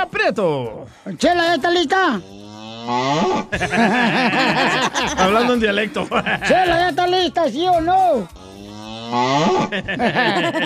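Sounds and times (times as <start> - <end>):
speech: 0.0 - 8.5, 9.1 - 10.6
cow mooing: 2.3 - 3.5, 8.4 - 9.8
laughter: 3.5 - 7.1, 9.4 - 10.6.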